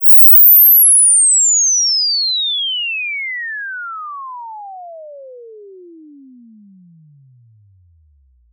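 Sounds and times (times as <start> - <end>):
inverted sweep tone from 20 Hz to 20 kHz: 0.0 - 8.4.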